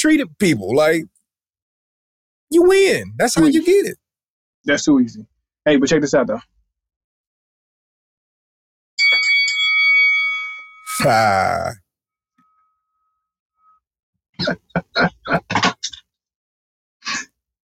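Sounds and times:
speech: 0.0s - 1.1s, 2.5s - 4.0s, 4.6s - 6.5s, 11.0s - 11.8s, 14.4s - 15.7s
final bell ringing with bright sustained tones: 9.0s - 11.1s
person grunting: 10.9s - 11.8s.

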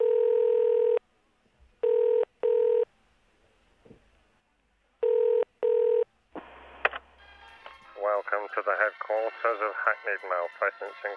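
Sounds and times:
telephone ringing tone heard down the line: 0.0s - 1.0s, 1.8s - 2.9s, 5.0s - 6.1s
speech: 8.5s - 11.1s.

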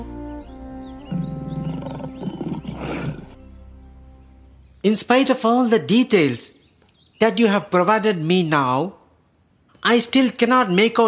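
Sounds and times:
lion roaring: 1.1s - 3.4s
speech: 4.8s - 6.6s, 7.2s - 9.0s, 9.8s - 11.0s.

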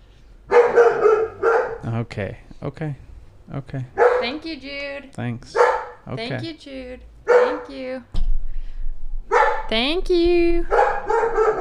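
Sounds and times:
female dog barking at people outside the house: 0.5s - 1.9s, 3.9s - 4.4s, 5.5s - 6.1s, 7.2s - 7.7s, 9.3s - 9.7s, 10.7s - 11.5s
speech: 2.0s - 8.2s, 9.7s - 11.5s.

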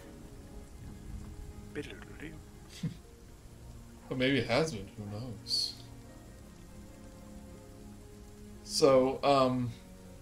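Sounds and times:
steady rain falling: 0.0s - 10.2s
speech: 1.8s - 3.1s, 4.1s - 5.8s, 8.8s - 9.8s.

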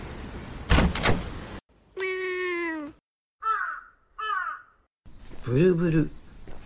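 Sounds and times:
door sliding and rattling open: 0.6s - 1.6s
long strained door creak: 0.7s - 2.1s
short harsh crow-like caws: 3.4s - 4.9s
speech: 5.5s - 6.2s.

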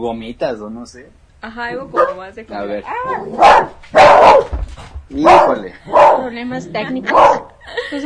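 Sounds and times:
speech: 0.0s - 8.0s
dog barking: 1.9s - 2.3s, 2.9s - 4.6s, 5.2s - 6.3s, 7.1s - 7.6s.

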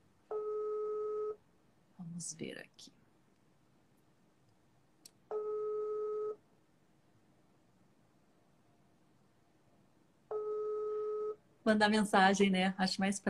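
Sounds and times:
telephone ringing tone on an unanswered outgoing call: 0.3s - 1.4s, 5.3s - 6.4s, 10.3s - 11.4s
speech: 2.2s - 3.0s, 11.7s - 13.2s.

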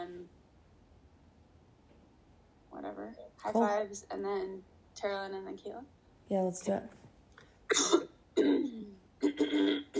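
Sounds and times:
speech: 3.4s - 7.0s
person clearing throat: 7.7s - 9.9s.

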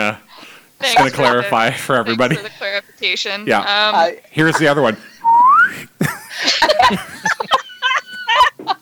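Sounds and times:
people giggling: 0.8s - 2.6s, 4.4s - 8.8s
speech: 0.8s - 5.1s, 5.7s - 7.1s
voices chattering: 0.8s - 8.6s
slide whistle descending gliding note: 5.2s - 5.8s.

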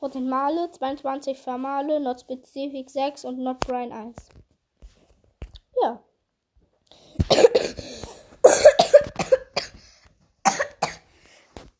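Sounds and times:
speech: 0.0s - 4.4s, 5.8s - 6.1s
person in a loud coughing fit: 7.2s - 11.1s.

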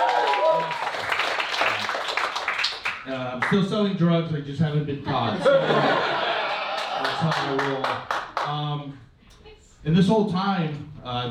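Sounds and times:
people cheering: 0.0s - 2.3s, 5.8s - 8.0s
crowd applauding: 0.0s - 3.6s, 6.3s - 8.6s
speech: 3.1s - 6.2s, 7.2s - 9.1s, 9.8s - 11.2s
laughter: 5.1s - 7.6s.

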